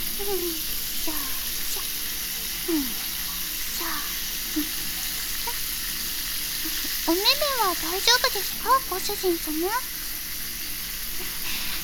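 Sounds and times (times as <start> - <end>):
shower spray rinsing soap suds off a person: 0.0 - 11.8
speech: 0.2 - 1.4, 2.6 - 3.1, 7.1 - 10.0.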